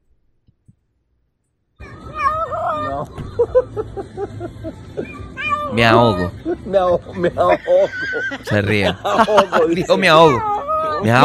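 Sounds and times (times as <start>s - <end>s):
distressed cat yowling and meowing after being dropped in pool: 1.8s - 3.2s, 5.0s - 6.4s, 10.2s - 11.2s
laughter: 2.5s - 5.4s, 6.0s - 11.2s
speech: 5.8s - 11.2s.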